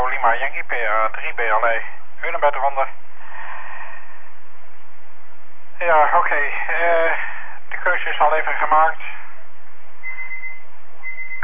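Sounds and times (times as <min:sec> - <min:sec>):
constant hiss: 0:00.0 - 0:11.4
speech: 0:00.4 - 0:03.1, 0:05.8 - 0:09.2
electronic beeping alert tone: 0:10.0 - 0:11.4.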